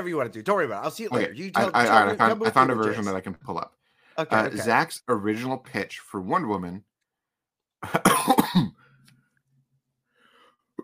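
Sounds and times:
speech: 0.0s - 6.9s, 7.8s - 8.8s
quiet breathing: 3.8s - 4.2s, 10.0s - 10.7s
rough coughing: 7.8s - 8.8s.

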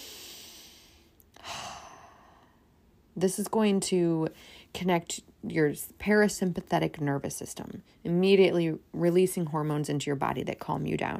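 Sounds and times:
person taking a deep breath during a calming hand-on-heart exercise: 0.0s - 2.7s
speech: 3.2s - 11.1s.

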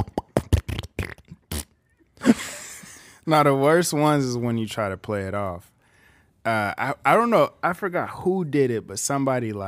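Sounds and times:
voice imitating farts while climbing a long staircase: 0.0s - 1.8s
breathy raspberry: 0.0s - 3.2s
speech: 3.2s - 5.7s, 6.4s - 9.6s.

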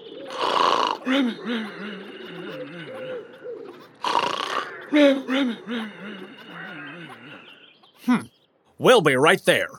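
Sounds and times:
voice imitating cartoonish snoring over a phone: 0.3s - 1.4s, 4.0s - 5.2s
speech: 1.0s - 2.5s, 4.9s - 6.4s, 8.0s - 9.7s
laughter: 1.1s - 3.9s, 4.8s - 8.2s.

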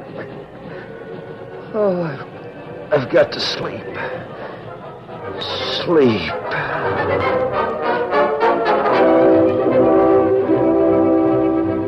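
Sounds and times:
freight train chugging around the base of a mountain: 0.0s - 11.8s
speech: 1.7s - 2.3s, 2.9s - 4.4s, 5.3s - 7.8s
sustained chord-like train horn: 5.4s - 11.8s.

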